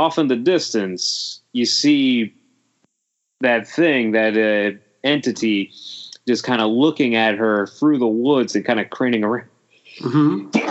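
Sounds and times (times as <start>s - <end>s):
speech: 0.0s - 2.4s, 3.4s - 10.6s
person sneezing: 10.0s - 10.6s.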